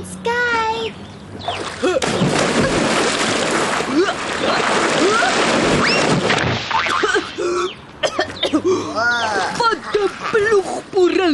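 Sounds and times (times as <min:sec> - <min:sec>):
busy pool noise: 0:00.5 - 0:11.3
splash of someone diving into water: 0:01.5 - 0:07.1.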